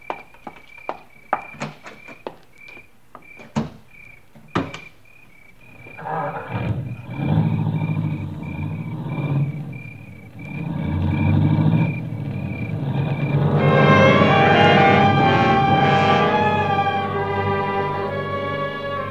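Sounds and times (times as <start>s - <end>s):
car engine rumbling and revving as the vehicle pulls away: 6.6s - 19.1s.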